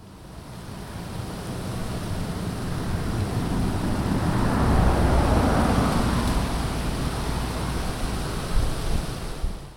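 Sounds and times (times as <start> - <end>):
steady roar of road traffic: 0.2 - 8.7
car approaching and passing: 2.5 - 8.4.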